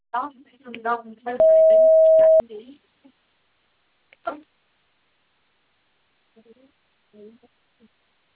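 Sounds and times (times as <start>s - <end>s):
voicemail recording beep tone: 1.4s - 2.4s.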